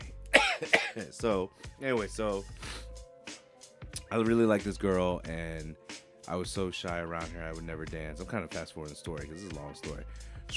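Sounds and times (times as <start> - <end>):
person coughing: 0.4 - 1.1
rough throat clearing: 0.4 - 1.1
speech: 0.6 - 2.8, 4.1 - 10.5.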